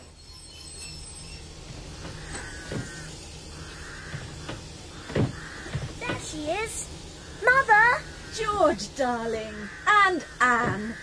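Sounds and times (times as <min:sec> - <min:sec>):
thin metallic squeals from train wheels: 0:00.0 - 0:08.6
train rumbling as it slows to a stop: 0:00.0 - 0:11.0
speech: 0:08.6 - 0:11.0.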